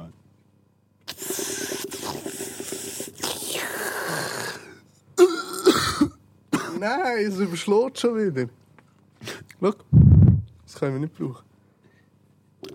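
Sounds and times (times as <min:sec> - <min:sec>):
person coughing and clearing throat into a microphone: 0:05.2 - 0:06.9
speech: 0:06.8 - 0:08.6, 0:09.6 - 0:09.9, 0:10.8 - 0:11.5.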